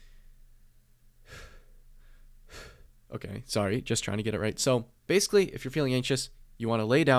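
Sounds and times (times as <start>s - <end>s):
steady low hum: 0.0s - 7.1s
quick sharp breaths demonstrating a breathing technique for anxiety: 1.2s - 3.0s
speech: 3.1s - 7.1s.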